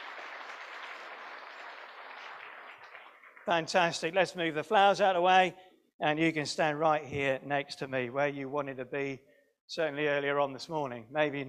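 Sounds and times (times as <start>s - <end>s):
crowd applauding: 0.0s - 4.0s
speech: 3.4s - 11.4s.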